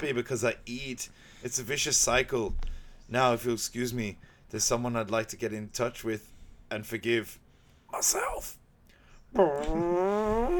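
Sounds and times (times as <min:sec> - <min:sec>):
speech: 0:00.0 - 0:08.6, 0:09.3 - 0:10.5
long buzzy fart: 0:09.4 - 0:10.5.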